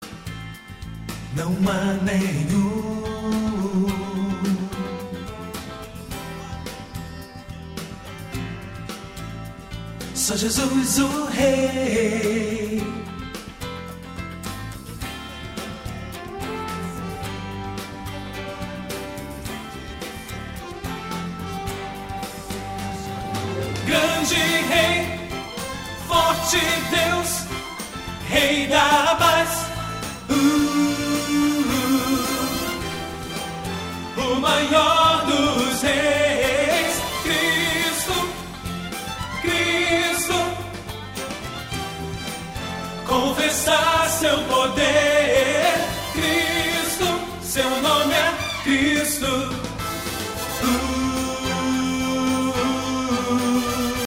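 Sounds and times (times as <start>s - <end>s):
tenor singing a Christmas cantata: 1.3s - 8.7s, 10.1s - 13.4s, 15.5s - 54.0s.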